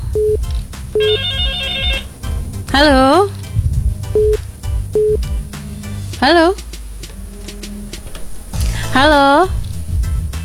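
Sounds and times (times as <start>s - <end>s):
fainter sustained tonal hum: 0.0s - 10.4s
low rumble: 0.0s - 10.4s
telephone ringing for an incoming caller: 1.0s - 2.0s
speech: 2.8s - 3.2s, 6.2s - 6.6s.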